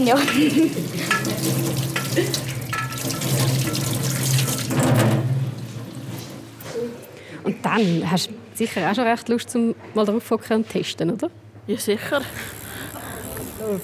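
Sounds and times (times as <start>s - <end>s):
speech: 0.0s - 1.6s, 2.2s - 2.5s, 7.4s - 12.6s, 13.6s - 13.8s
water running from a tap: 0.0s - 6.6s.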